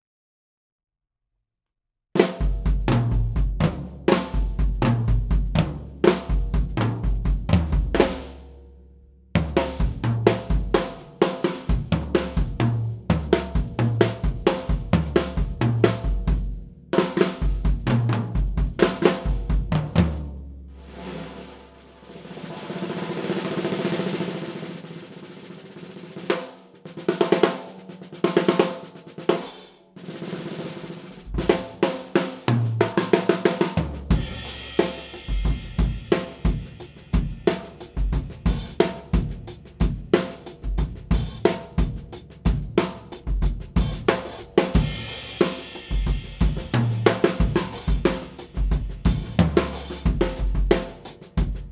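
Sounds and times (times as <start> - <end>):
black Gretsch drum kit: 2.2 - 8.6, 9.4 - 51.7.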